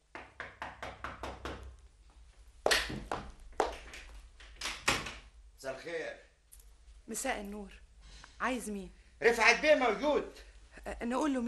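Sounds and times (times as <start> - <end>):
knocking on the door of a home: 0.1 - 1.7
speech: 5.6 - 6.3, 7.1 - 7.8, 8.4 - 11.4.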